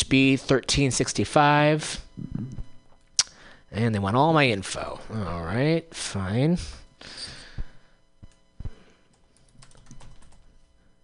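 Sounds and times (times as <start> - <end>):
low room hum: 0.0 - 11.0
speech: 0.1 - 2.6, 3.7 - 7.4
typing on a computer keyboard: 9.4 - 10.4.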